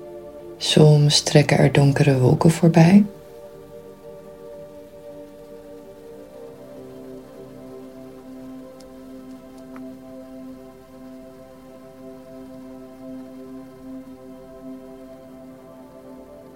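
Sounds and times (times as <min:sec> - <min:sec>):
steady rain falling: 0:00.4 - 0:16.5
speech: 0:00.6 - 0:03.2
faint scattered ticks: 0:04.6 - 0:06.5, 0:07.2 - 0:10.0.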